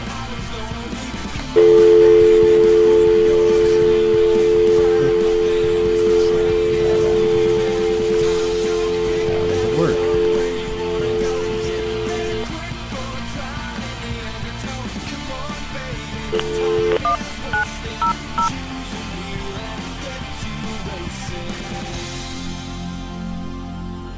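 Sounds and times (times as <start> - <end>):
telephone dial tone: 1.6 - 12.5, 16.4 - 17.2
telephone keypad dialing beeps: 1.6 - 12.5, 16.4 - 18.5.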